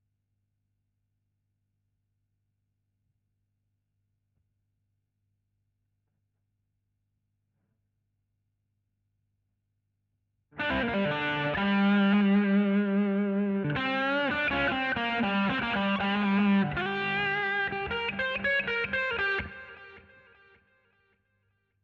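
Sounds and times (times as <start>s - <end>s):
guitar solo: 10.6s - 20.5s.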